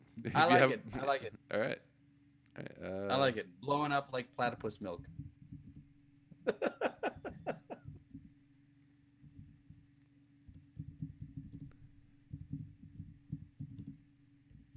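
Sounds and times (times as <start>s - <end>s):
speech: 0.2s - 1.9s, 2.6s - 5.2s, 6.4s - 7.2s
laughter: 6.5s - 7.9s
typing on a computer keyboard: 10.5s - 14.0s.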